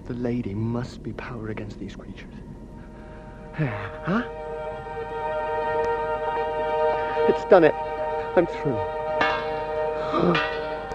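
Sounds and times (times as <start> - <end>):
speech: 0.1 - 2.5, 3.6 - 4.4, 7.2 - 9.0, 10.1 - 10.6
large bell rung as a front doorbell at a gateway: 3.3 - 10.9.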